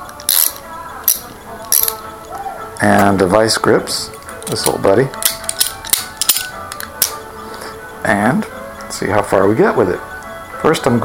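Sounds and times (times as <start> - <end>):
socket wrench ratcheting on a bolt under a wheelchair seat: 0.2 - 2.0, 4.4 - 7.2
speech: 2.8 - 5.4, 8.1 - 11.0.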